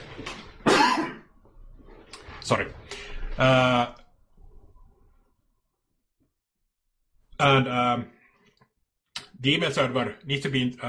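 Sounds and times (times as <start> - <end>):
person coughing: 0.6 - 1.3
speech: 2.5 - 4.0, 7.4 - 8.2, 9.4 - 10.8.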